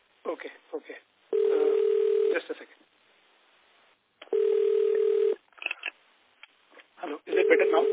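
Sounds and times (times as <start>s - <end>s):
speech: 0.2s - 3.0s, 7.1s - 7.9s
electronic phone tone over a narrow tinny call line: 1.3s - 2.3s, 4.3s - 5.4s, 7.3s - 7.9s.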